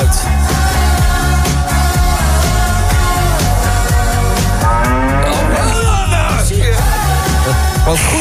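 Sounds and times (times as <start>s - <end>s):
loud busy song with steady drums: 0.0s - 7.9s
drawn-out gliding cow moo: 4.6s - 6.1s.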